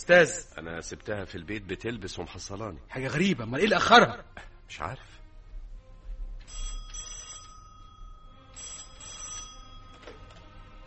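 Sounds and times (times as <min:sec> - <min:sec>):
speech: 0:00.0 - 0:05.2
telephone bell ringing: 0:06.4 - 0:10.8.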